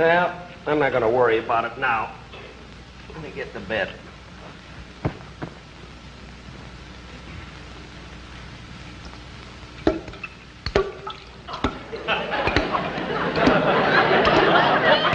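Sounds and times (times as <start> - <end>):
speech: 0.0 - 2.2, 3.1 - 4.1
steady low hiss: 0.0 - 15.1
faucet dripping: 9.8 - 11.8
laughter: 11.5 - 15.1.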